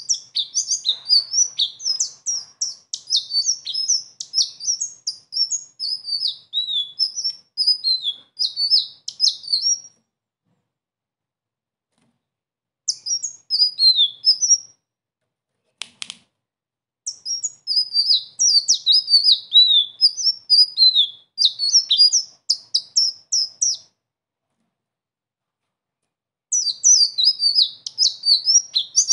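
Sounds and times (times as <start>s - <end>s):
sunbird singing a high-pitched twittering song: 0.0s - 9.9s, 12.9s - 14.7s, 17.1s - 23.9s, 26.5s - 29.1s.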